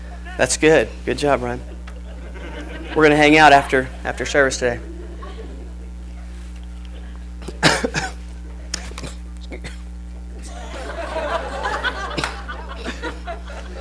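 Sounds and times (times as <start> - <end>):
laughter: 0.0 - 0.6, 1.4 - 13.7
steady low hum: 0.0 - 13.7
speech: 0.4 - 1.7, 2.9 - 4.9
throat clearing: 7.0 - 10.6
person coughing: 7.0 - 10.8.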